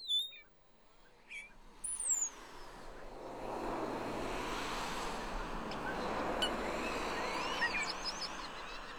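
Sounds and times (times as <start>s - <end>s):
birdsong chirps and whistles: 0.0s - 0.5s, 5.4s - 8.9s
traffic rumble in an open-air car park: 1.6s - 8.9s.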